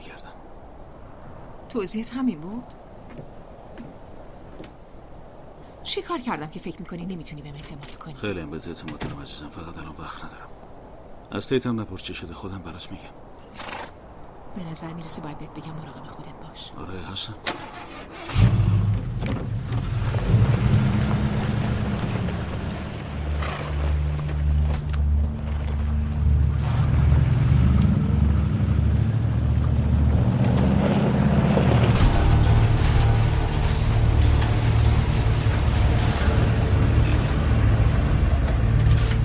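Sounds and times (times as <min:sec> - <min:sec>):
speech: 0:01.7 - 0:03.3, 0:05.9 - 0:10.6, 0:11.3 - 0:13.7, 0:14.6 - 0:18.5
car engine rumbling while driving: 0:17.7 - 0:39.2.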